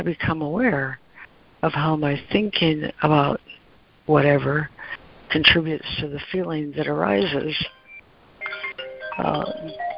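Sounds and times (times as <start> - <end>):
speech: 0.0 - 1.0, 1.6 - 7.8, 9.2 - 9.8
phone ringtone of bright electronic tones: 7.7 - 9.9.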